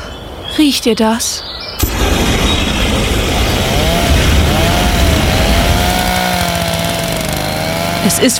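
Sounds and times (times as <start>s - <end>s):
speech: 0.6s - 1.5s, 8.1s - 8.3s
lawn mowers running: 1.9s - 8.3s
pressure washers running: 2.7s - 8.3s.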